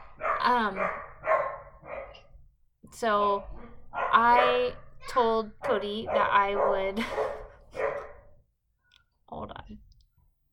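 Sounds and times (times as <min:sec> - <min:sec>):
pet dog barking: 0:00.0 - 0:02.3, 0:03.4 - 0:08.3
speech: 0:00.5 - 0:01.0, 0:02.9 - 0:07.4.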